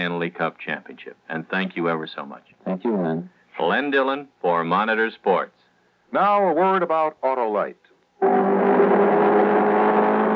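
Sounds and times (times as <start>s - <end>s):
speech: 0.0s - 8.4s
Ford Mark IV race car engine roaring: 8.2s - 10.3s.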